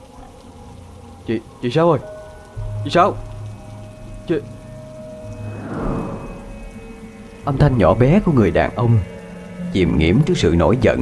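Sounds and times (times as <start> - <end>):
heavy rain pouring on open fields: 0.0 - 8.3
speech: 1.3 - 2.2, 2.8 - 3.3, 4.3 - 4.6, 7.4 - 9.1, 9.7 - 11.0
howling wind: 5.2 - 7.1.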